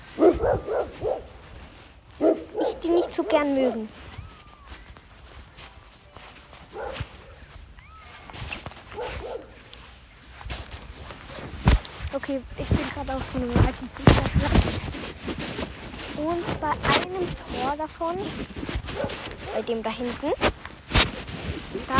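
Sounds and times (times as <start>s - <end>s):
dogs barking outdoors at an old football pitch: 0.0s - 1.4s, 2.2s - 3.8s, 6.7s - 7.4s, 8.9s - 9.7s, 18.9s - 19.7s
footsteps shuffling: 0.0s - 21.9s
speech: 3.2s - 4.1s, 12.3s - 15.6s, 16.2s - 20.6s.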